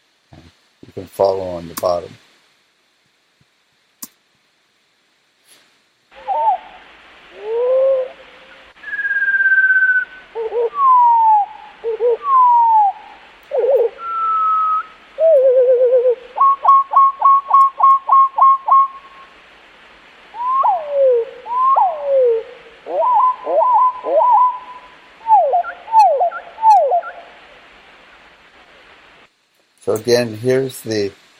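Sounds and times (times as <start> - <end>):
speech: 0.9 - 2.2, 30.0 - 31.2
sparrow song slowed down five times: 6.2 - 19.4, 20.3 - 27.5.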